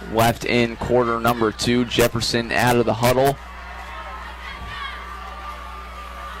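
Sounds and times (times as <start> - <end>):
large football stadium crowd cheering and shouting in Harrisburg: 0.0 - 6.3
speech: 0.1 - 3.5.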